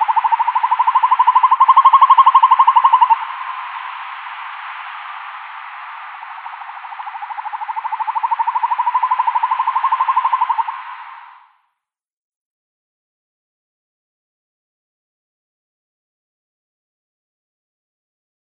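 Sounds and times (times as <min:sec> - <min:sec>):
male northern hawk-owl trilling display call: 0:00.0 - 0:11.5.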